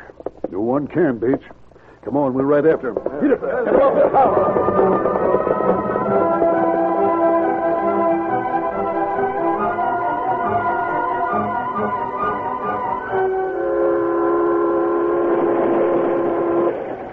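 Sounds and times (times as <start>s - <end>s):
speech: 0.5s - 6.4s
moving train rumbling along with clatter: 2.8s - 17.1s
laughter: 3.0s - 5.3s
sustained chord-like train whistle droning: 4.8s - 17.0s.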